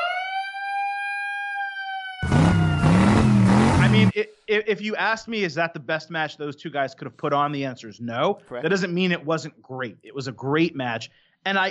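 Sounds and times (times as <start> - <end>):
siren sound effect wailing: 0.0 - 4.2
dense burst of noisy rumbling sound: 2.2 - 5.2
speech: 4.0 - 11.6.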